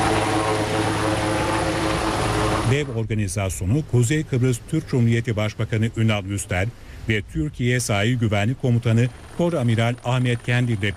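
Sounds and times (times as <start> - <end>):
helicopter rotor and engine roar during a sea rescue drill: 0.0 - 3.0, 7.9 - 10.9
speech: 2.7 - 10.9.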